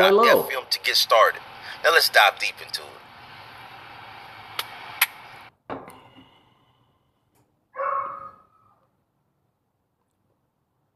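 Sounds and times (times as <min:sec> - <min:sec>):
speech: 0:00.0 - 0:03.0
hissy noise: 0:00.0 - 0:05.5
thump: 0:05.7 - 0:06.0
dog giving a high whining yelp: 0:07.8 - 0:08.8.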